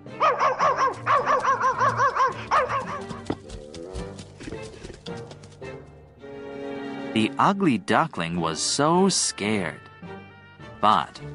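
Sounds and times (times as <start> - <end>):
big dog barking: 0.2 - 3.3
speech: 7.2 - 9.9, 10.8 - 11.3.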